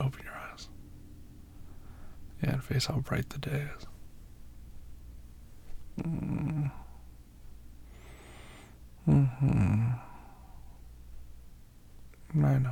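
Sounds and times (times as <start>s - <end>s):
speech: 2.4s - 3.9s, 6.0s - 6.8s, 9.1s - 9.9s, 12.4s - 12.6s
person yawning: 6.0s - 7.0s, 9.0s - 10.3s.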